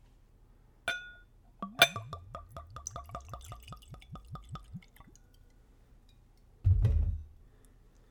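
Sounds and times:
glass clinking: 0.9s - 4.0s
whiskey glugging out of a bottle into a glass: 1.6s - 5.2s.

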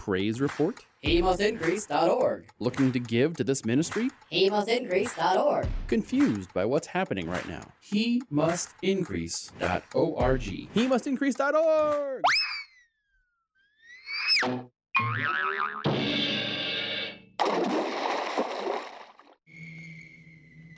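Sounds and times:
speech: 0.0s - 12.5s, 14.4s - 16.2s
cartoonish whistles: 12.2s - 12.9s, 13.9s - 14.5s
cartoonish boings: 13.9s - 16.4s
water splash sound effect: 17.4s - 19.4s.

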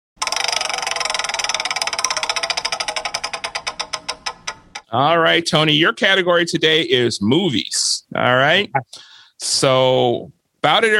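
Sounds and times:
game show prize wheel spinning with ratcheting clicks: 0.2s - 4.9s
speech: 4.9s - 10.9s.

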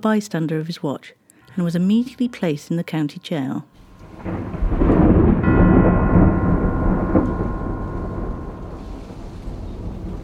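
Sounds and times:
speech: 0.0s - 4.8s
heavy peals of distant thunder: 3.8s - 10.2s.

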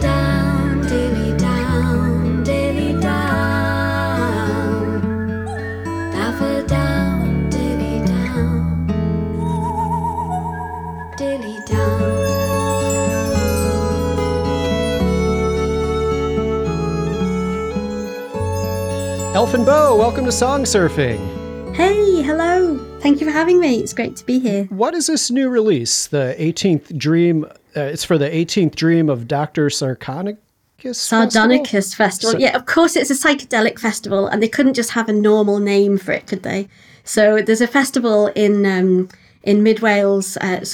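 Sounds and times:
sung folk song with layered instruments: 0.0s - 24.4s
speech: 19.5s - 40.7s.

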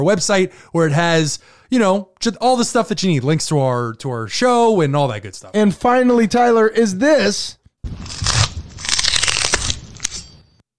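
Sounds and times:
speech: 0.0s - 8.4s
sound effect of a face being peeled off, crackling wet tearing: 7.9s - 10.3s.

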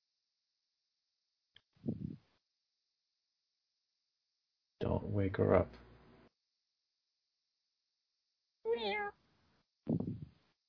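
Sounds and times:
speech: 5.2s - 5.8s
cat meowing: 8.7s - 9.2s.

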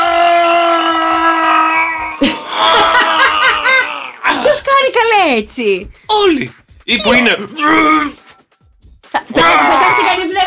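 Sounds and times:
person imitating a gym-goer's strained grunting scream while lifting: 0.0s - 4.5s, 7.5s - 8.2s, 9.4s - 10.1s
person laughing: 2.2s - 4.1s, 9.4s - 10.2s
speech: 4.9s - 8.2s, 9.2s - 10.4s.

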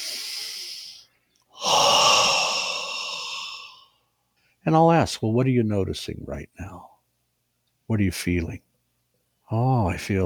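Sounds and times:
deep belly breath during a calming coherence session: 0.0s - 1.0s, 1.6s - 4.0s
speech: 4.7s - 6.9s, 7.9s - 8.7s, 9.5s - 10.2s.

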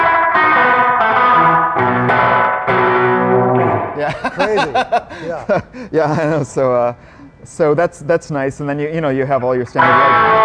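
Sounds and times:
instrumental passage of sustained chords with echo-tape delay: 0.0s - 4.0s, 9.8s - 10.4s
laughter: 4.0s - 6.5s
speech: 4.1s - 10.4s.

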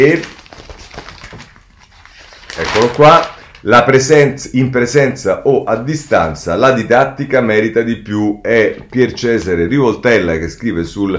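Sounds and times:
speech: 0.0s - 0.3s, 2.6s - 11.1s
newspaper pages being turned and rustled: 0.0s - 4.0s.

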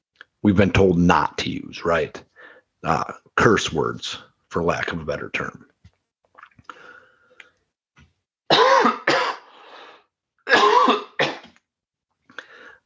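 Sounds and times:
speech: 0.4s - 5.7s
harsh coughing: 8.5s - 9.6s, 10.5s - 11.6s.

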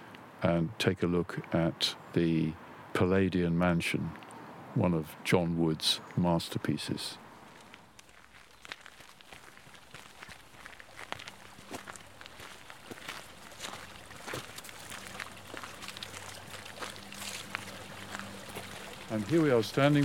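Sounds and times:
speech: 0.4s - 7.2s, 19.2s - 20.0s
sharp footsteps: 7.4s - 20.0s
water trickling from an underground spring: 7.5s - 20.0s.

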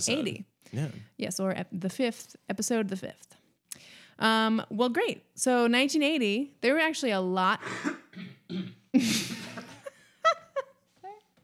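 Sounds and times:
speech: 0.0s - 9.2s
short throaty vocal sounds: 0.8s - 1.1s
harsh cough: 7.6s - 9.8s.

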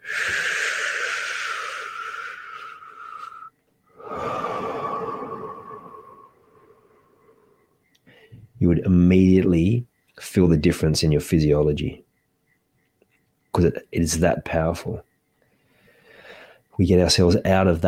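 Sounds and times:
slow deep breaths in and out: 0.0s - 8.6s, 15.4s - 16.8s
speech: 8.7s - 12.1s, 13.6s - 15.1s, 16.8s - 17.8s.

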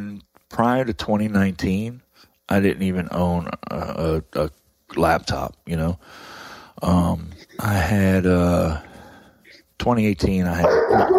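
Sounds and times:
speech: 0.0s - 6.0s, 6.8s - 8.9s, 9.5s - 11.0s
dog barking and whining while mail is being delivered: 10.6s - 11.1s.

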